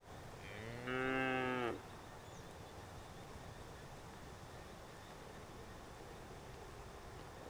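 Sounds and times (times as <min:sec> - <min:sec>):
cows grazing and mooing: 0:00.4 - 0:01.8.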